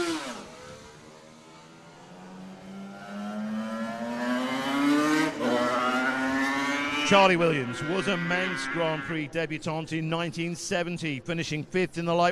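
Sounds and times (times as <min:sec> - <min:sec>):
Suzuki RG500 racing motorcycle roaring along the mountain course: 0:00.0 - 0:09.7
speech: 0:07.1 - 0:12.3.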